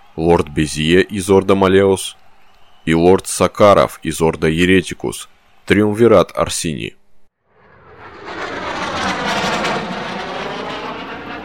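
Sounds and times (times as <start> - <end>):
speech: 0.2 - 2.2, 2.8 - 7.0
jet aircraft roaring overhead: 7.4 - 11.4.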